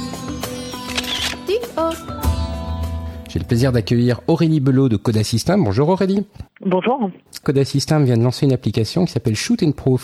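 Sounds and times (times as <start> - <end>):
camera shutter clicks: 0.8 - 1.5
speech: 1.6 - 2.2, 3.3 - 10.0.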